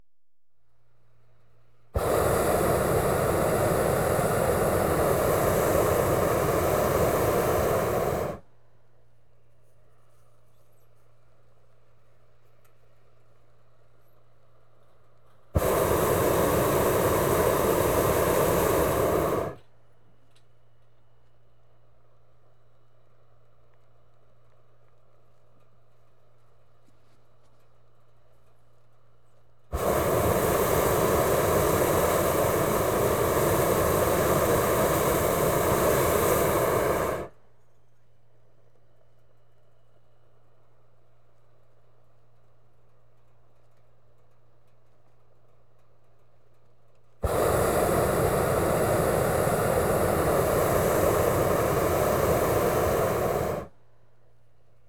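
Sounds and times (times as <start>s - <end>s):
gas burners and pilot light: 2.0s - 8.4s, 15.6s - 19.6s, 29.7s - 37.4s, 47.2s - 53.7s.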